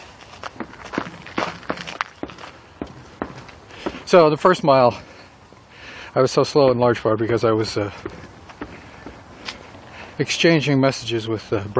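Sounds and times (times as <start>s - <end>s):
footsteps of a person out on a walk: 0.0s - 5.2s, 7.2s - 10.0s
speech: 4.1s - 5.1s, 6.1s - 8.2s, 10.2s - 11.7s.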